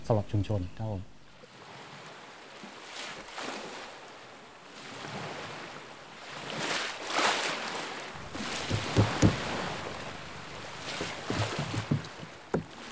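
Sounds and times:
speech: 0:00.1 - 0:01.1
ocean waves on Pranburi beach in Thailand: 0:01.3 - 0:12.9
sharper splashes and knocks of water: 0:08.2 - 0:12.9.

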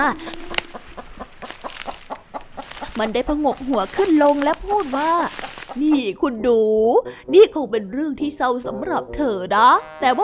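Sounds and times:
speech: 0:00.0 - 0:00.4, 0:03.0 - 0:10.2
hen clucking: 0:00.0 - 0:06.2.

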